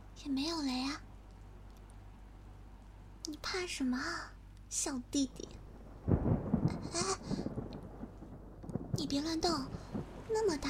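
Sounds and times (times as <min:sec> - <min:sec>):
speech: 0:00.2 - 0:01.1, 0:03.3 - 0:05.6, 0:06.7 - 0:07.3, 0:09.0 - 0:10.6
steady rain pouring: 0:05.6 - 0:10.6.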